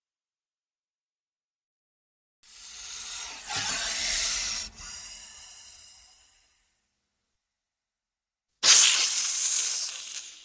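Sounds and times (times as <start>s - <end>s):
snake hissing: 2.5s - 6.6s, 8.6s - 10.4s.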